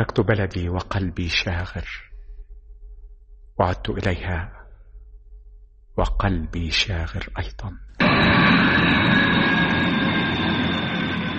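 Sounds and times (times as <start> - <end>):
speech: 0.0 - 2.1, 3.6 - 4.6, 6.0 - 9.2
airplane in flight approaching the airport: 8.0 - 11.3.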